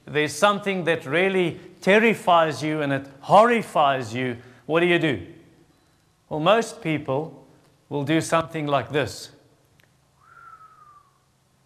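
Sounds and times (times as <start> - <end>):
speech: 0.1 - 5.3, 6.3 - 9.4
soft whistle through the teeth in dismay: 10.2 - 11.3.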